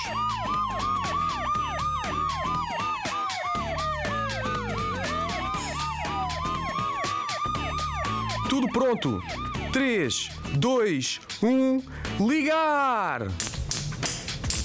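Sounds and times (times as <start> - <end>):
several police car sirens wailing: 0.0 - 11.3
speech: 8.5 - 13.5.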